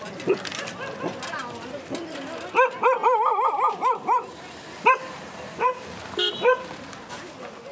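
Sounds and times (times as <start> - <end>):
distant and close dogs barking in the slums of Madras: 0.3 - 1.2, 2.6 - 6.8.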